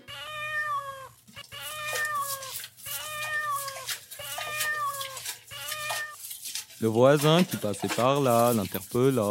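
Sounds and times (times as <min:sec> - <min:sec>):
cat meowing while being washed: 0:00.0 - 0:06.2
speech: 0:06.8 - 0:09.2.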